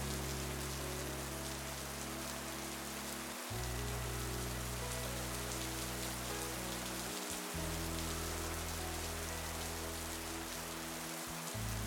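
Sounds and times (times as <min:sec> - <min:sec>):
soft music with low sustained chords: 0:00.0 - 0:11.8
steady dense rain shower hissing: 0:00.0 - 0:11.8.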